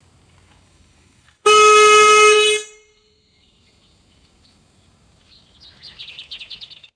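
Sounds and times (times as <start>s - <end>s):
single and double vehicle horn honks: 1.4s - 3.2s.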